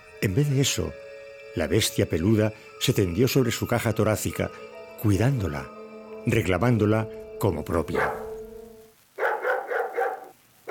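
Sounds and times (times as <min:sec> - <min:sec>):
speech: 0:00.2 - 0:08.2
beagle barking: 0:07.9 - 0:08.4, 0:09.2 - 0:10.7.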